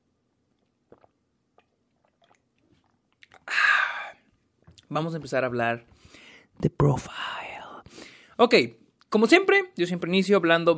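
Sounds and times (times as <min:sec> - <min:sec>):
wet mouth clicks: 0:00.5 - 0:03.5
speech: 0:04.9 - 0:07.4, 0:08.4 - 0:10.7.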